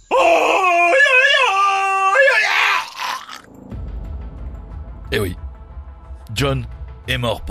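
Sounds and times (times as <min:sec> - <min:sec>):
man imitating a yodelling jungle-man yell while jumping: 0:00.1 - 0:03.2
speech: 0:05.1 - 0:05.4, 0:06.4 - 0:07.4.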